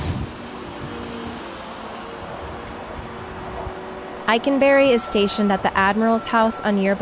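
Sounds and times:
faint high whine: 0:00.0 - 0:07.0
heavy hydraulic machinery drone of a crane boom extending: 0:00.0 - 0:07.0
speech: 0:04.3 - 0:07.0.

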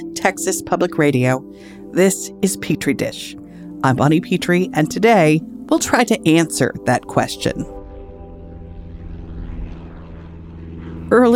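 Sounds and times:
speech: 0:00.0 - 0:07.8, 0:11.1 - 0:11.3
small propeller plane droning overhead: 0:04.9 - 0:11.3.

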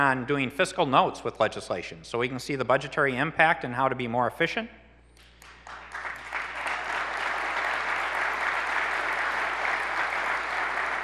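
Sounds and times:
speech: 0:00.0 - 0:04.8
audience clapping during a speech about government and legislation: 0:05.2 - 0:11.0.

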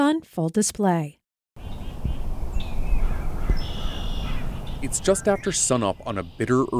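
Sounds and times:
speech: 0:00.1 - 0:01.2, 0:04.8 - 0:06.7
dawn chorus of birds calling and whistling in the open air: 0:01.6 - 0:06.7
harsh caws: 0:03.0 - 0:04.8.

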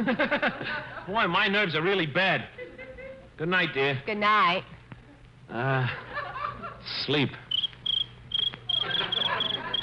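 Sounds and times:
laughter: 0:00.0 - 0:01.3, 0:02.6 - 0:03.3, 0:05.5 - 0:07.1, 0:08.6 - 0:09.8
speech: 0:00.0 - 0:02.6, 0:03.4 - 0:04.8, 0:05.5 - 0:06.1, 0:06.8 - 0:07.4
faint low hum: 0:00.0 - 0:09.8
cricket chirping in the country at night: 0:07.5 - 0:09.8.

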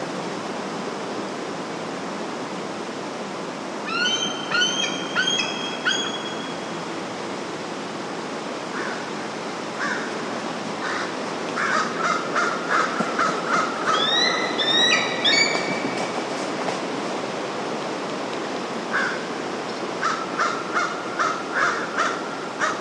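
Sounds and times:
steady outdoor hiss: 0:00.0 - 0:22.7
bald eagles calling on the northern bay of the Bagaduce River in Penobscot Maine: 0:03.8 - 0:06.7, 0:10.8 - 0:15.8, 0:20.0 - 0:22.7
high rising piping chirps: 0:03.9 - 0:06.9.

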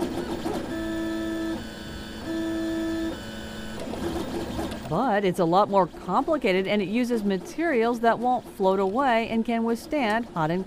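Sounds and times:
3D printer stepper motors whining: 0:00.0 - 0:05.1
speech: 0:04.9 - 0:10.6.

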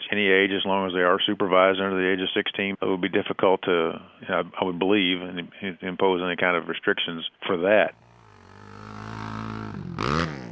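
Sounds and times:
speech: 0:00.2 - 0:08.0
ATV or dirt bike engine racing down a track at a state park: 0:08.0 - 0:10.5.

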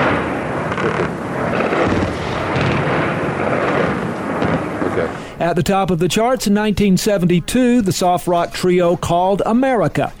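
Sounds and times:
gunfire in Baghdad at the start of a massive aerial campaign: 0:00.0 - 0:05.2
speech: 0:00.8 - 0:01.2, 0:05.4 - 0:10.1.

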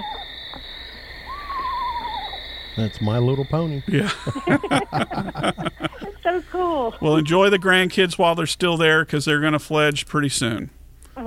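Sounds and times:
Eastern Screech Owl tremulous whinny: 0:00.0 - 0:02.7
steady hum of insects: 0:00.0 - 0:11.2
laughter: 0:02.8 - 0:08.1
speech: 0:02.8 - 0:10.8.

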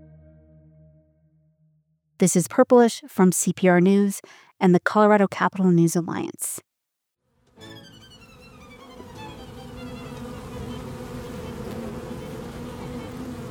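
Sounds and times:
speech: 0:02.2 - 0:06.7
many bees buzzing together in a hive with the queen present: 0:07.8 - 0:13.5.

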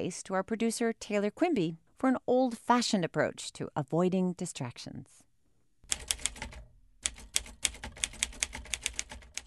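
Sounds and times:
speech: 0:00.0 - 0:05.3
keys striking on a manual typewriter: 0:05.9 - 0:09.4.

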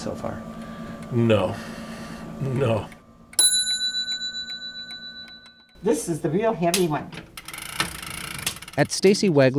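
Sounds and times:
speech: 0:00.0 - 0:01.8, 0:02.4 - 0:03.0, 0:05.8 - 0:07.3, 0:08.8 - 0:09.5
grandfather clock with brass works chiming: 0:03.4 - 0:06.2, 0:07.4 - 0:08.9.

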